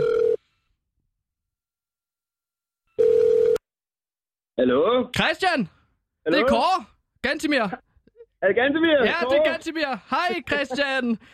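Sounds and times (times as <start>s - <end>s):
electronic ringback tone of an outgoing phone call: 0.0s - 0.4s, 3.0s - 3.6s
speech: 4.6s - 11.3s
laughter: 9.1s - 11.2s.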